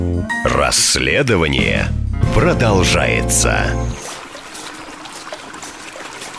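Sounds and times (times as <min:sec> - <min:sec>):
speech: 0:00.6 - 0:04.0
river water flowing: 0:04.0 - 0:06.3.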